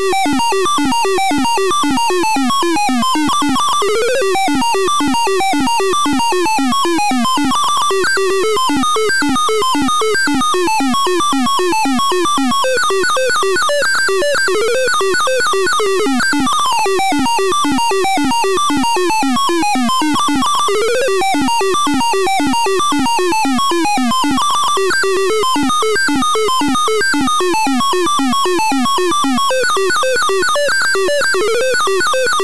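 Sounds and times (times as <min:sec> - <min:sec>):
frantic retro computer game intro music with fast bleeping electronic notes: 0:00.1 - 0:32.4.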